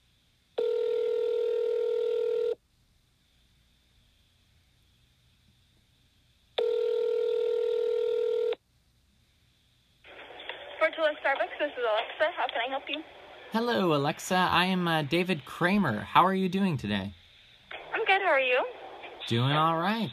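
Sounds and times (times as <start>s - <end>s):
quiet hiss: 0.0s - 0.6s, 2.6s - 6.6s, 8.6s - 20.1s
outgoing phone call ringing with long electronic rings: 0.6s - 2.6s, 6.6s - 8.6s
speech: 11.6s - 17.2s, 19.3s - 20.1s.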